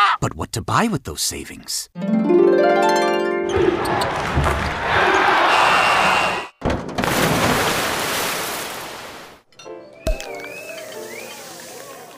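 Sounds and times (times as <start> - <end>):
speech: 0.2 - 5.1
thuds from a sound effects machine: 4.1 - 4.8, 6.6 - 7.9
rising whistly tone from a sound effects machine: 5.4 - 6.6, 9.6 - 11.8.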